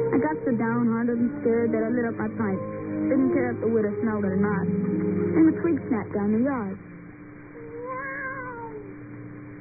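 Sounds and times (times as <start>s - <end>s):
speech: 0.2s - 6.9s
human voice imitating a cat meow: 7.6s - 8.9s.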